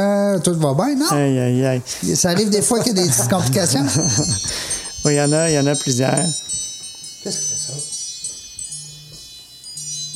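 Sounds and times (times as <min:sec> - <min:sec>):
speech: 0:00.0 - 0:06.5, 0:07.2 - 0:07.9
laughter: 0:02.0 - 0:04.6
mobile phone ringtone: 0:03.3 - 0:10.1.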